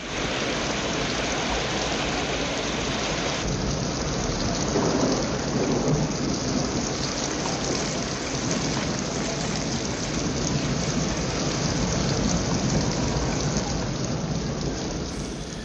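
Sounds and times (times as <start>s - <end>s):
heavy rain pouring at an outdoor music festival: 0.0s - 15.6s
thunder rumbling at an outdoor music festival: 0.0s - 15.6s.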